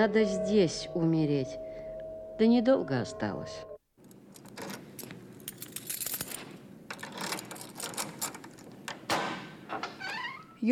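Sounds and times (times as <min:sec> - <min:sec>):
speech: 0:00.0 - 0:01.6, 0:02.4 - 0:03.7
keys jangling and scraping in a door lock: 0:04.0 - 0:08.8
metallic door lock mechanism clicking: 0:04.0 - 0:10.3.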